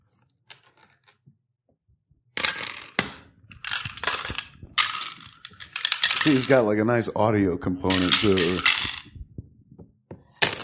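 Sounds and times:
dice tumbling and knocking against a hard surface: 0:02.4 - 0:06.8, 0:07.8 - 0:09.3
speech: 0:06.2 - 0:09.0.

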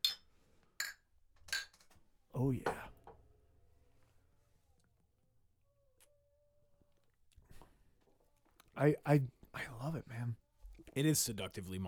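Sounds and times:
glasses clinking in a toast: 0:00.0 - 0:01.8
speech: 0:02.4 - 0:02.9, 0:08.8 - 0:11.8.

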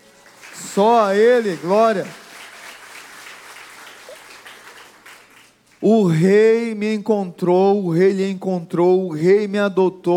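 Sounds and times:
congregation applauding: 0:00.0 - 0:05.9
speech: 0:00.8 - 0:02.2, 0:05.8 - 0:10.1.

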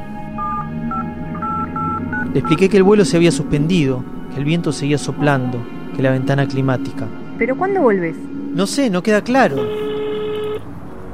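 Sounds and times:
telephone keypad tones: 0:00.4 - 0:02.2
speech: 0:02.4 - 0:09.8.

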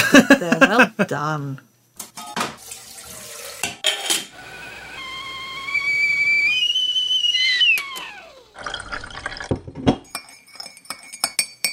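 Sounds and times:
speech: 0:00.4 - 0:01.7
running water: 0:02.5 - 0:03.7
kettle whistling: 0:04.4 - 0:09.2
teacups and spoons clinking: 0:10.1 - 0:11.7.

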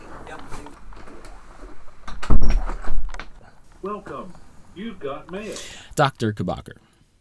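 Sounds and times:
door thudding shut: 0:02.1 - 0:03.1
speech: 0:03.8 - 0:06.9.

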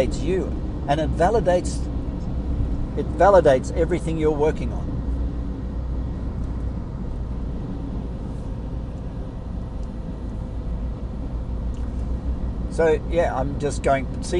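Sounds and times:
speech: 0:00.0 - 0:01.9, 0:03.0 - 0:04.9, 0:12.8 - 0:14.3
car cruising at highway speed on cruise control: 0:00.0 - 0:14.3.

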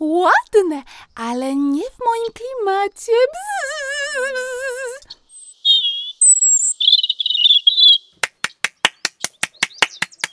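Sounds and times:
speech: 0:00.2 - 0:04.6
song thrush singing: 0:03.4 - 0:10.3.

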